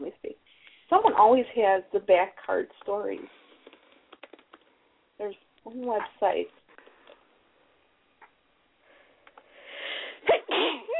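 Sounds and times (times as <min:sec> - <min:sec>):
speech: 0:00.9 - 0:03.4, 0:05.2 - 0:06.6
person sneezing after an inhale: 0:10.0 - 0:10.9.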